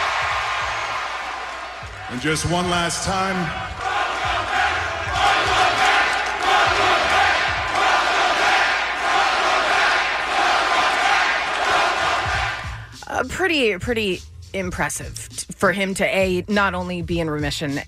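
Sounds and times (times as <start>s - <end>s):
large arena crowd roaring and cheering: 0.0s - 12.8s
speech: 2.1s - 3.8s, 13.2s - 17.8s.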